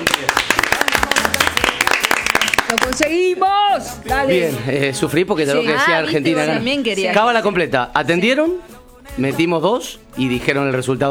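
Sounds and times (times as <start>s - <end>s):
small group clapping: 0.0s - 3.3s
speech: 2.7s - 11.1s.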